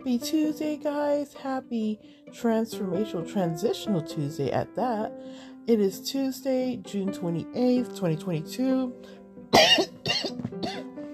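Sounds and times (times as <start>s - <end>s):
speech: 0.0s - 9.9s
person clearing throat: 9.6s - 10.9s
person coughing: 9.6s - 10.9s.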